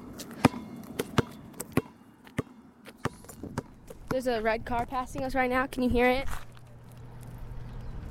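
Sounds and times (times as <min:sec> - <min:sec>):
ball thumping: 0:00.2 - 0:05.3
speech: 0:04.1 - 0:06.4.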